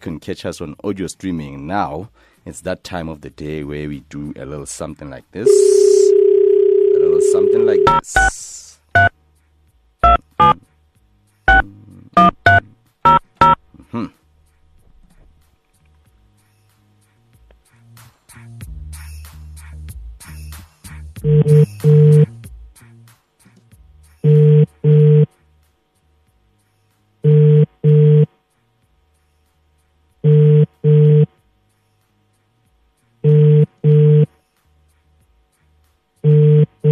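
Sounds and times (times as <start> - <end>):
speech: 0.0 - 6.5, 7.3 - 9.1
outgoing call ringing tone through a phone line: 5.4 - 8.1, 10.0 - 10.6, 12.2 - 13.6, 21.3 - 22.3, 24.3 - 25.3, 27.3 - 28.3, 30.3 - 31.3, 33.3 - 34.3, 36.3 - 36.9.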